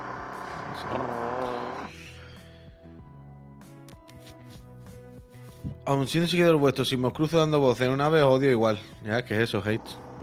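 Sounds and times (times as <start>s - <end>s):
carpenter's power drill running: 0.0s - 2.0s, 9.7s - 10.2s
speech: 0.8s - 1.7s, 5.9s - 10.2s.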